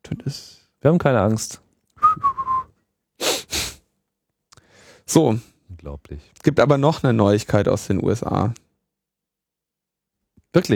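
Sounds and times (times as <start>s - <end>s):
speech: 0.2s - 1.6s, 5.1s - 8.6s, 10.5s - 10.7s
person whistling a short three-note phrase: 2.0s - 2.7s
breathy hissing puffs of air: 3.2s - 3.8s.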